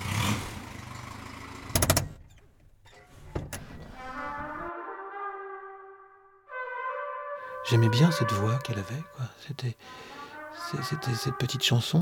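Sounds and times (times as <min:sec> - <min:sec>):
car engine revving: 0:00.0 - 0:02.2
speech: 0:07.7 - 0:12.0.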